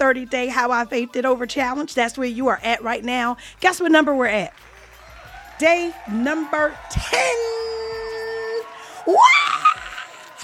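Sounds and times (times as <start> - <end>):
speech: 0.1 - 4.7, 5.6 - 7.8, 9.1 - 9.4
person whooping: 7.0 - 10.4
person screaming excitedly: 9.0 - 10.4.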